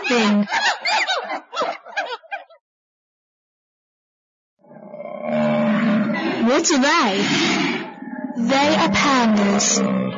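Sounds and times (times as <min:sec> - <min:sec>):
laughter: 0:00.0 - 0:02.6
speech: 0:00.1 - 0:00.8, 0:06.6 - 0:07.5, 0:08.4 - 0:10.1
lion roaring: 0:04.6 - 0:10.1.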